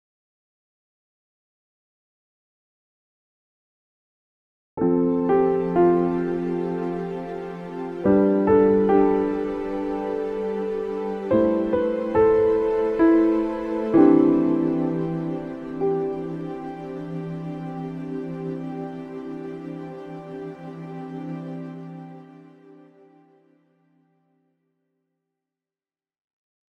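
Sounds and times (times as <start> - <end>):
ambient worship synth pad: 5.1 - 23.4.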